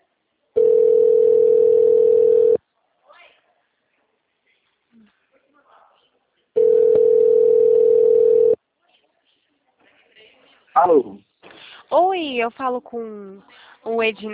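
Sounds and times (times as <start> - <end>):
telephone tone beeps while calling back after the line dropped: 0.6 - 2.6, 6.6 - 8.6
speech: 12.2 - 14.3.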